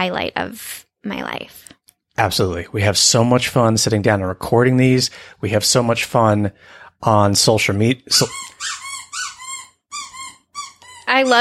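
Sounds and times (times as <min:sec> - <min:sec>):
speech: 0:00.0 - 0:08.8, 0:11.1 - 0:11.3
dog's high squeaky whine: 0:08.2 - 0:11.3.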